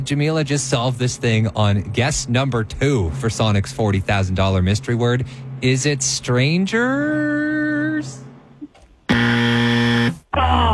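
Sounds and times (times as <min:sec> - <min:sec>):
speech: 0:00.0 - 0:08.3
game show buzzer: 0:09.1 - 0:10.3.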